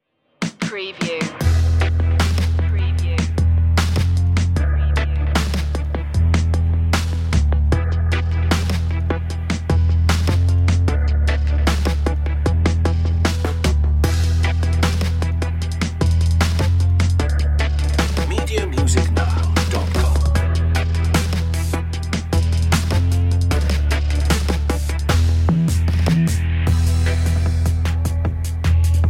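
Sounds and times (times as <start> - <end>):
abrasive urban jungle underscore music: 0.4 - 29.0.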